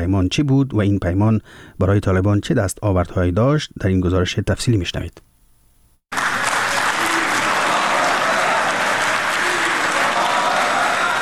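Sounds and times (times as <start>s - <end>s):
speech: 0.0s - 5.3s
applause in a hotel hall after a peace treaty signing: 6.1s - 11.2s.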